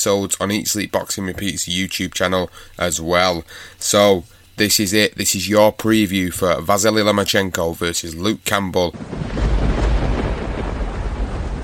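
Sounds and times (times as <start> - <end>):
speech: 0.0 - 9.8
thunder rumbling from a storm: 9.0 - 11.6.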